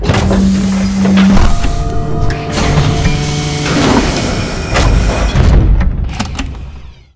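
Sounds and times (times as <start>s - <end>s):
station airlock: 0.0s - 7.1s.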